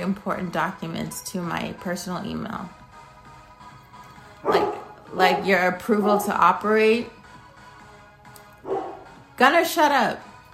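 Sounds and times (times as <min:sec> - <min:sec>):
speech: 0:00.0 - 0:02.8, 0:04.4 - 0:07.2, 0:09.4 - 0:10.3
dog barking: 0:04.4 - 0:06.4, 0:08.6 - 0:09.1.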